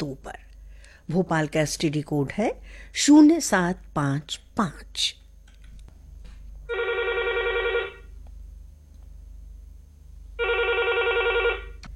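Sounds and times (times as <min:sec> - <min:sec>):
quiet hum: 0:00.0 - 0:11.9
speech: 0:01.1 - 0:05.2
telephone ringing for a phone-in radio request programme: 0:06.7 - 0:08.1, 0:10.4 - 0:11.8.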